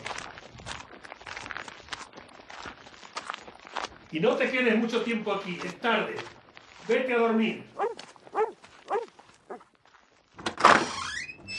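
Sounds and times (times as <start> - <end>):
speech: 4.1 - 7.8
dogs barking: 7.8 - 9.6
harsh scraping noise with a rising squeak: 10.7 - 11.5.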